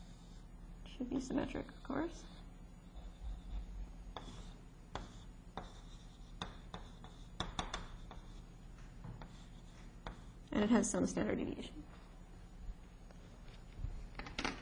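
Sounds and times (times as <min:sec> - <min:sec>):
steady low hum: 0:00.0 - 0:14.5
speech: 0:01.0 - 0:02.4, 0:10.6 - 0:11.9
scratchy hand-drawing strokes sketching a Gaussian curve: 0:02.8 - 0:10.5.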